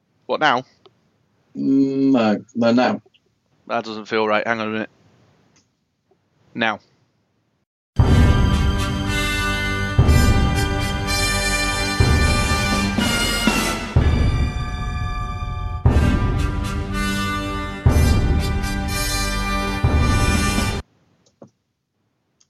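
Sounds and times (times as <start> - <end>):
speech: 0.3 - 0.7, 1.6 - 3.1, 3.7 - 5.0, 6.6 - 6.9
bright punchy instrumental quiz show theme jingle: 8.0 - 20.8.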